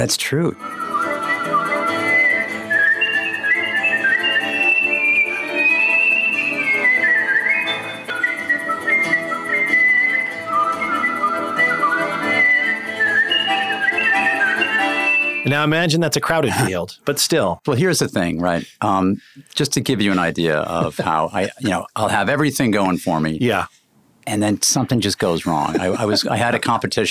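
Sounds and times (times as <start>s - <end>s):
speech: 0.0s - 1.0s, 15.5s - 27.0s
competitive whistler whistling a long continuous tune: 0.6s - 15.6s
laughter: 18.2s - 19.3s, 19.9s - 22.2s, 25.2s - 27.0s.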